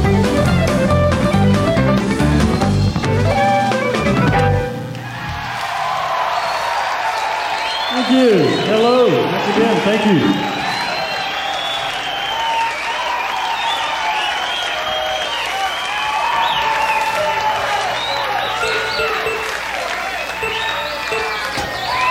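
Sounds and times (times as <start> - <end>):
concert crowd whistling: 0.0 - 22.0
large concert crowd clapping in Tucson: 3.2 - 22.0
speech: 8.2 - 10.5.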